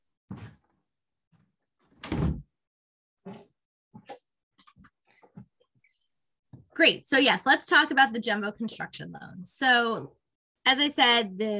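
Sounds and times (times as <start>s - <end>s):
door pushed shut with a thud: 1.9s - 2.5s
speech: 6.8s - 11.5s.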